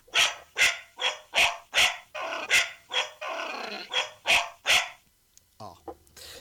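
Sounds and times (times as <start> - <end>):
two dogs barking back and forth: 0.1 - 5.0.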